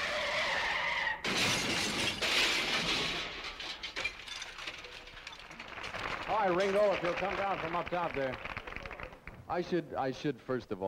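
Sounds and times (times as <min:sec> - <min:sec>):
car crash tire screech sound effect: 0:00.0 - 0:01.2
heavy car crash impact: 0:01.2 - 0:04.7
glass shattering: 0:01.2 - 0:06.0
debris clattering: 0:01.2 - 0:07.0
speech: 0:06.4 - 0:08.5, 0:09.5 - 0:10.8.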